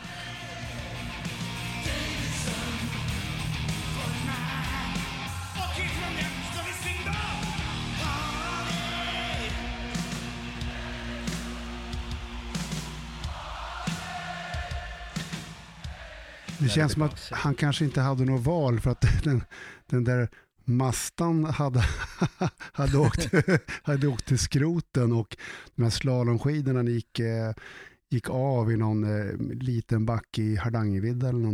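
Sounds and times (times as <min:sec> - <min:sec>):
large concert crowd singing along: 0:00.0 - 0:03.2, 0:04.0 - 0:18.1
concert music: 0:00.0 - 0:18.5
laughter: 0:16.6 - 0:18.0, 0:21.8 - 0:24.3
speech: 0:16.6 - 0:31.5.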